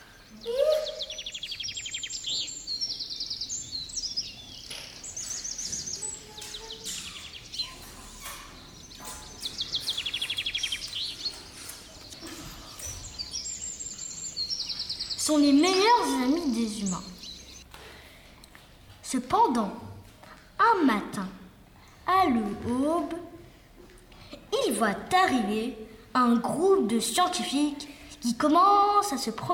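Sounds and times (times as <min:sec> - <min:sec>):
several birds singing and chirping: 0:00.0 - 0:17.6
speech: 0:15.3 - 0:17.1, 0:19.1 - 0:19.8, 0:20.6 - 0:21.4, 0:22.2 - 0:23.2, 0:24.8 - 0:29.5.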